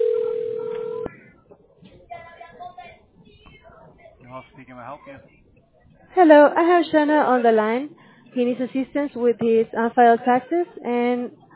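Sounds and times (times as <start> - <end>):
telephone line tone while dialing out: 0.0 - 1.1
speech: 4.4 - 5.4, 6.1 - 11.4.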